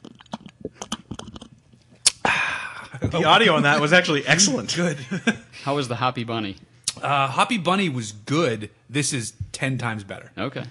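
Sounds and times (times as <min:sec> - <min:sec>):
slurp and gulp of beer: 0:00.0 - 0:02.2
person sipping beer: 0:00.0 - 0:02.8
laughter: 0:02.9 - 0:05.6
speech: 0:03.0 - 0:10.6.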